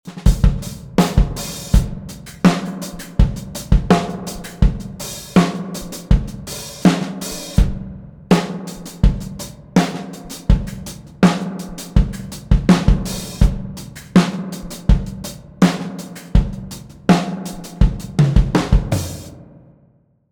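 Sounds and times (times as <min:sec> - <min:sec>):
drum buss: 0:00.0 - 0:19.9.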